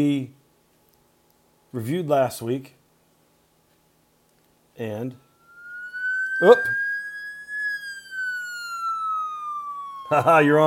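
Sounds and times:
speech: 0.0s - 0.4s, 1.7s - 2.8s, 4.8s - 5.2s, 6.4s - 6.8s, 10.1s - 10.6s
siren sound effect wail: 5.2s - 10.6s.

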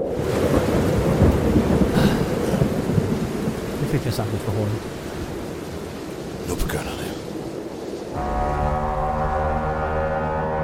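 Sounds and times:
deep rumble of thunder: 0.0s - 10.6s
heavy rain pouring: 0.0s - 10.6s
speech: 4.0s - 5.0s.

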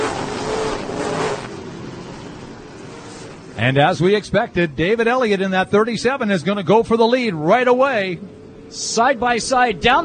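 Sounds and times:
race car engines roaring as a race begins on an oval track: 0.0s - 10.0s
speech: 3.6s - 10.0s.

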